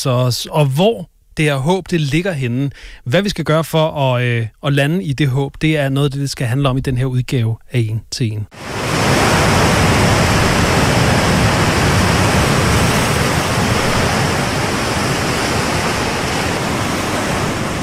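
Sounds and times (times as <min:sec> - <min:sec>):
speech: 0:00.0 - 0:09.1
ocean waves from the sea around Denmark: 0:08.5 - 0:17.8.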